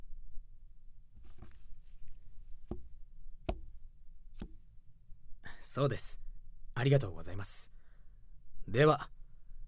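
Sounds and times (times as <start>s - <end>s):
tarot cards tapping on a table: 4.4s - 4.6s
speech: 5.8s - 6.2s, 6.8s - 7.7s, 8.7s - 9.2s.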